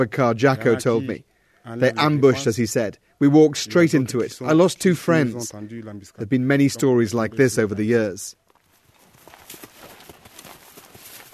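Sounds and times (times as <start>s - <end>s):
speech: 0.0s - 8.4s
horses walking, hooves clip-clopping: 8.4s - 11.3s.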